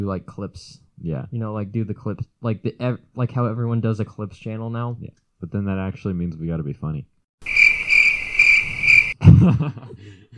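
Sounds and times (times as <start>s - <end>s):
speech: 0.0s - 7.5s, 9.2s - 10.2s
cricket chirping: 7.4s - 9.2s.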